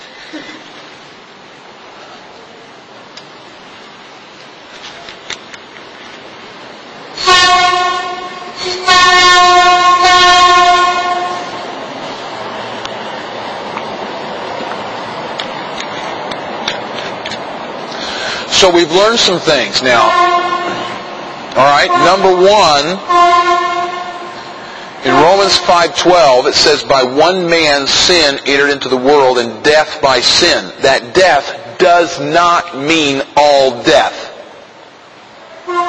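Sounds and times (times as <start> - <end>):
train rumbling past: 0.0 - 35.8
train horn blasts: 7.2 - 11.8, 19.9 - 25.8, 35.6 - 35.8
speech: 18.7 - 20.3, 21.6 - 23.5, 25.2 - 34.2.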